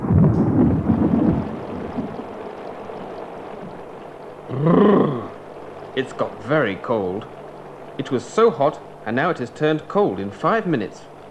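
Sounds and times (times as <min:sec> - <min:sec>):
loud crack of thunder: 0:00.0 - 0:02.6
deep rolling thunder: 0:00.0 - 0:05.6
steady rain: 0:00.0 - 0:11.3
speech: 0:06.0 - 0:07.4, 0:08.0 - 0:11.1.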